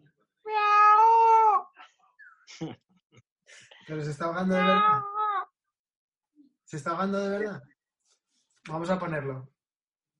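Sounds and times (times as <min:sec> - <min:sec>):
person imitating a cat meow: 0:00.5 - 0:01.7, 0:04.5 - 0:05.5
speech: 0:02.6 - 0:02.8, 0:03.5 - 0:05.1, 0:06.7 - 0:07.7, 0:08.7 - 0:09.6.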